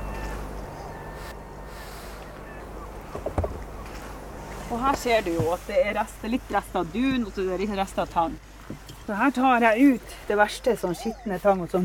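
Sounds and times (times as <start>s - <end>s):
harsh gull calls: 0.0s - 4.0s
steady low rumble of a boat motor: 0.0s - 11.8s
water: 1.2s - 11.8s
speech: 4.7s - 11.8s.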